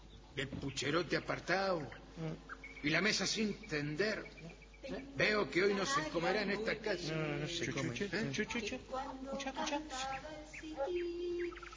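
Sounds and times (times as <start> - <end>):
small bird singing: 0.0 - 6.1, 9.8 - 11.7
speech: 0.4 - 11.7.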